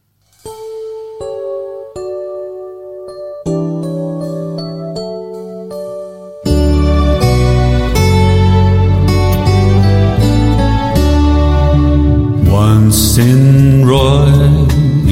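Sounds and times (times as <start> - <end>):
fuller instrumental Christmas carol arrangement: 0.0 - 15.0
sparse chiming melody of a Christmas carol intro: 0.7 - 11.9.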